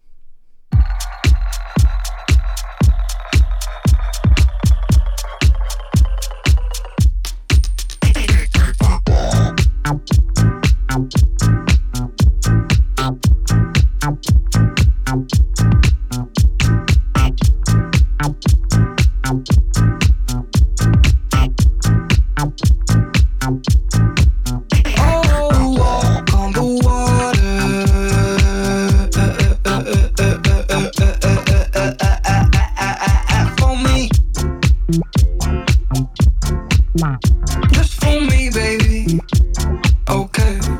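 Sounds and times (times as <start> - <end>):
song with pounding beat: 0.7 - 40.7.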